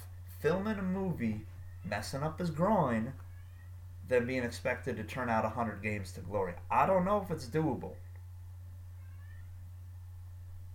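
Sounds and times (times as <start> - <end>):
steady low electrical hum: 0.0 - 10.7
speech: 0.4 - 3.3, 4.1 - 8.0
cat meowing: 3.2 - 3.8, 9.0 - 9.6.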